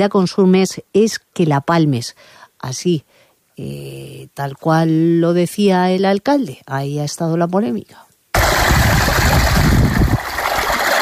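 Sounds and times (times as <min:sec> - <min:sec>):
speech: 0:00.0 - 0:08.0
drinking water running from a village fountain: 0:08.4 - 0:11.0.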